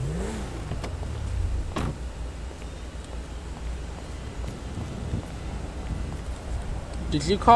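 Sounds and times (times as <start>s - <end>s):
sheriff SUV engine revving in a video game: 0.0s - 2.4s
sheriff SUV engine driving in a video game: 0.0s - 7.5s
wind-like noise: 0.2s - 7.5s.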